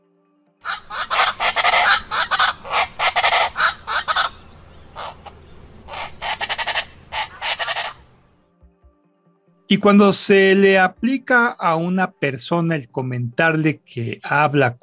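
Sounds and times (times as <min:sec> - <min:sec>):
chachalaca calls: 0:00.6 - 0:08.2
speech: 0:09.7 - 0:14.8.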